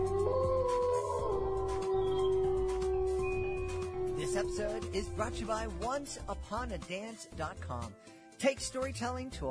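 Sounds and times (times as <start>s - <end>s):
several wolves howling in an overlapping chorus: 0.0s - 6.4s
speech: 4.4s - 9.4s.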